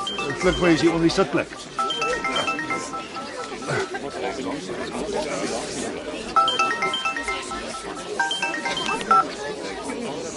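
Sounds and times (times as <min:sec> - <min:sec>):
mobile phone ringing with melodic electronic tones: 0:00.0 - 0:05.1, 0:06.4 - 0:09.5
voices and chatter: 0:00.0 - 0:10.3
speech: 0:00.4 - 0:01.8, 0:04.4 - 0:06.1.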